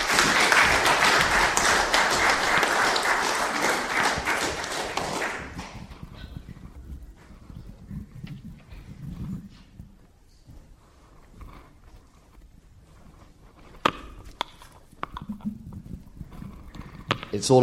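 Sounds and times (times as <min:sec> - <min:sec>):
crowd applause: 0:00.0 - 0:06.4
speech: 0:17.4 - 0:17.6.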